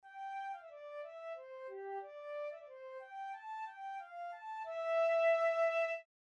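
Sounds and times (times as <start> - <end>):
flute playing in double time: 0.1 - 6.1.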